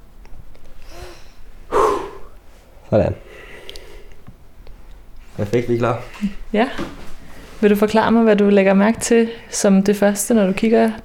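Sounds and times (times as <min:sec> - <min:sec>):
deep breath in and out: 0:00.8 - 0:02.4, 0:03.2 - 0:04.2
speech: 0:02.9 - 0:03.4, 0:05.4 - 0:07.0, 0:07.6 - 0:11.0.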